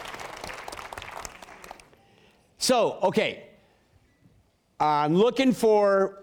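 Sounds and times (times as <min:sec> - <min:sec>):
audience clapping: 0:00.0 - 0:02.0
speech: 0:02.6 - 0:03.5, 0:04.8 - 0:06.2.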